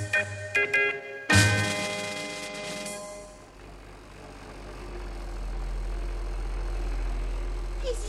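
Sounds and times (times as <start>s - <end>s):
bright ringing tones: 0.1s - 3.5s
motorhome engine rumble: 3.4s - 8.0s.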